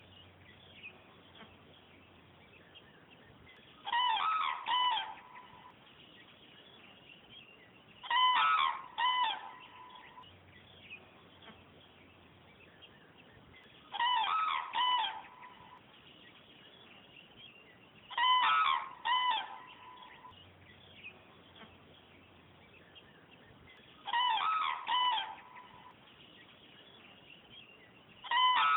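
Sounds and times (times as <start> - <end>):
cranes calling: 3.8 - 5.7, 8.0 - 10.2, 13.9 - 15.8, 18.1 - 20.3, 24.0 - 26.0, 28.2 - 28.7.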